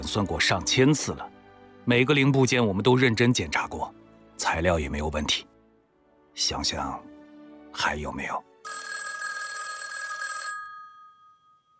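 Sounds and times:
speech: 0:00.1 - 0:05.5, 0:06.4 - 0:07.1, 0:07.8 - 0:08.9
telephone ringing with a bright electronic bell tone: 0:08.6 - 0:11.7.

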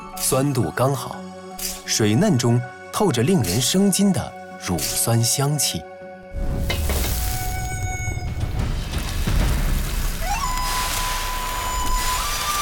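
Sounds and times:
speech: 0:00.3 - 0:01.2, 0:01.9 - 0:06.5
stir-frying sizzling and crackling in a wok: 0:06.4 - 0:12.6
thin high squealing tones: 0:10.2 - 0:12.6.

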